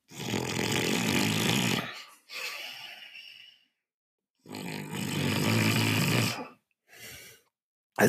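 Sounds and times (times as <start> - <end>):
person snoring with a closed mouth: 0.0 - 3.8, 4.4 - 6.6.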